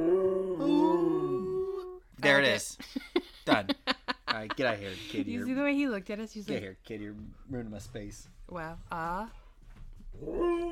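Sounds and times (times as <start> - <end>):
dog howling: 0.0 - 2.0, 10.2 - 10.7
speech: 2.2 - 9.4, 10.2 - 10.7.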